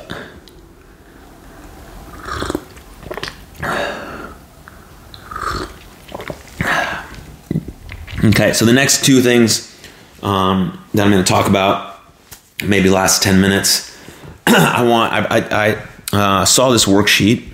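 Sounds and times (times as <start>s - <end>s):
person sipping and slurping a drink: 2.1s - 8.6s
person swallowing a drink: 2.1s - 8.6s
speech: 8.2s - 11.9s, 12.6s - 13.9s, 14.5s - 17.5s.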